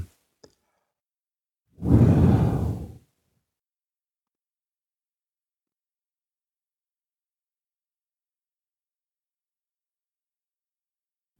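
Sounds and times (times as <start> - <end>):
deep breath in through the nose during a guided breathing exercise: 1.8 - 3.0.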